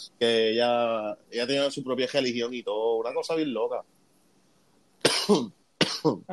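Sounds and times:
speech: 0.0 - 4.0, 5.3 - 6.3
person coughing harshly: 5.1 - 6.2.

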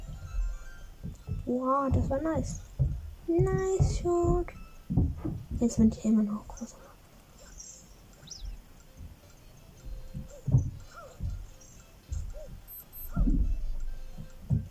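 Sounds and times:
high-pitched electronic beeps from a wristwatch: 0.0 - 1.8, 7.4 - 14.6
low thumps: 0.0 - 6.7, 8.2 - 14.6
rumbling noise: 0.0 - 14.6
speech: 1.5 - 2.7, 3.3 - 6.8.

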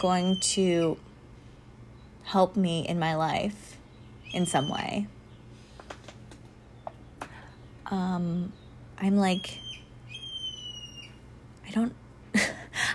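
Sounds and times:
bird stress calls: 0.0 - 1.0, 3.9 - 5.5, 8.5 - 11.2
speech: 0.0 - 1.1, 2.2 - 5.2, 7.9 - 9.7, 11.7 - 12.5.

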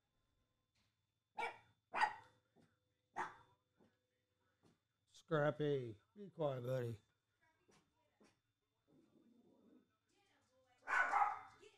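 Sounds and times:
chihuahua barking: 1.4 - 2.4, 3.2 - 3.5, 10.8 - 11.6
speech: 5.3 - 7.1.

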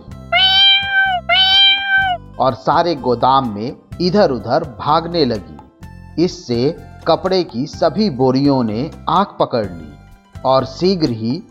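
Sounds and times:
panicked cat meowing in distress at fire: 0.4 - 2.2
speech: 2.4 - 5.5, 6.2 - 11.5.

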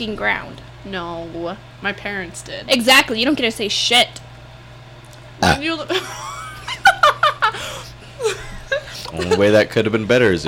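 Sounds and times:
speech: 0.0 - 4.2, 5.4 - 6.3, 9.1 - 10.4
loud burp: 5.4 - 5.6
people giggling with rhythmic laughter: 5.9 - 9.9.

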